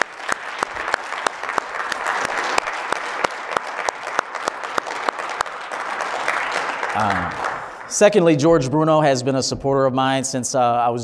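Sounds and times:
audience clapping: 0.0s - 8.4s
speech: 7.0s - 11.0s.

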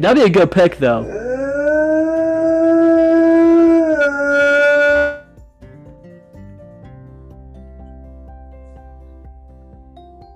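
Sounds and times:
speech: 0.0s - 1.2s
dog howling: 1.0s - 5.3s.

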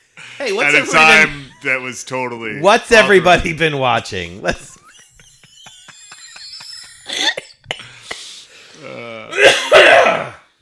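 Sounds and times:
speech: 0.4s - 4.7s
laughter: 0.5s - 2.1s, 4.4s - 7.7s
person coughing harshly with throaty rasping: 7.0s - 8.0s, 9.3s - 10.4s.

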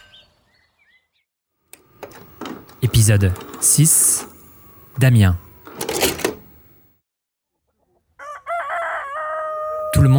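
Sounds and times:
speech: 3.0s - 4.3s, 5.0s - 5.4s
Gaulish rooster crowing: 8.2s - 10.1s.

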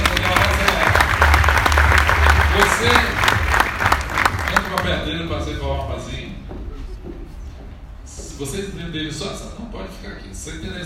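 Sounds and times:
audience applause with many hands clapping: 0.0s - 5.1s
speech: 8.4s - 10.8s.

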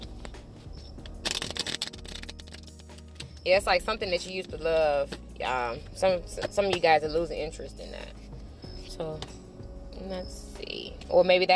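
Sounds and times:
deck of cards riffled: 1.0s - 3.4s
speech: 3.4s - 8.2s, 9.0s - 9.4s, 10.0s - 10.4s, 11.1s - 11.5s.

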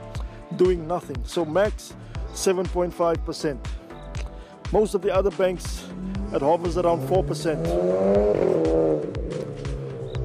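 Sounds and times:
speech: 0.5s - 3.8s, 4.7s - 9.2s
fast car engines revving and speeding: 5.9s - 10.2s
low pulsing rumble: 5.9s - 10.2s.

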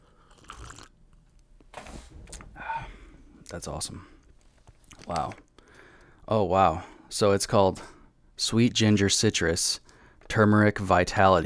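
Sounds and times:
slurping sips of tea from a cup: 0.2s - 0.9s
speech: 3.5s - 4.2s, 5.1s - 5.4s, 6.3s - 11.4s.

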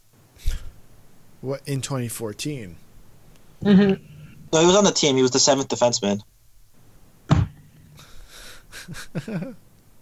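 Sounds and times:
speech: 1.4s - 2.8s, 3.6s - 6.3s, 8.9s - 9.7s
deck of cards slapped down hard on a table: 7.3s - 7.6s
laughter: 8.7s - 9.6s.

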